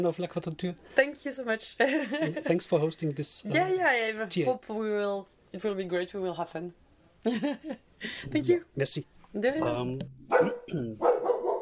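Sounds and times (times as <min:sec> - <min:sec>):
speech: 0:00.0 - 0:11.2
dog barking in a studio: 0:10.3 - 0:11.5.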